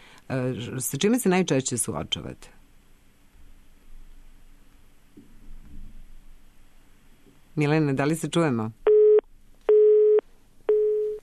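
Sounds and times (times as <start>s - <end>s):
speech: 0.3s - 2.6s, 7.6s - 8.8s
telephone busy signal beeps on a dropped call: 8.9s - 11.2s.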